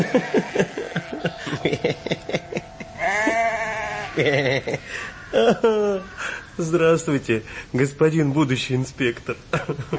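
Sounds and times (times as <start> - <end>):
laughter: 0.0 - 3.4, 4.0 - 6.4, 9.6 - 9.9
ram bleating: 3.0 - 4.2
speech: 4.2 - 9.9.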